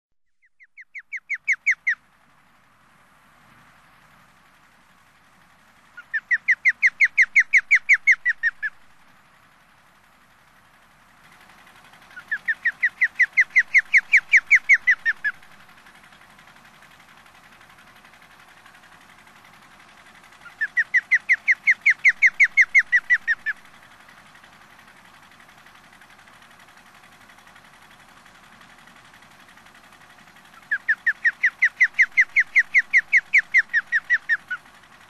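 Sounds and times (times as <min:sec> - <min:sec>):
Pandion haliaetus calling at sea in Sakhalin: 0:00.3 - 0:02.1, 0:05.8 - 0:09.2, 0:11.4 - 0:25.8, 0:28.6 - 0:35.0.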